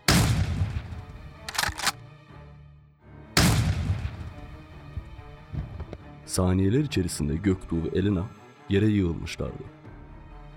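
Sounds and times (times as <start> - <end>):
rifle gunshots: 0.0 - 2.0, 3.4 - 4.6
speech: 6.3 - 9.8.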